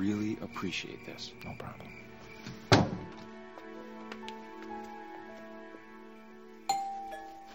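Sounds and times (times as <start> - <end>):
speech: 0.0 - 2.8
doorbell chiming: 6.7 - 7.5.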